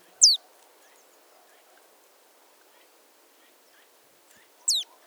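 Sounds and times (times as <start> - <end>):
Marsh tit Poecile palustris calling: 0.2 - 0.4, 4.7 - 4.9.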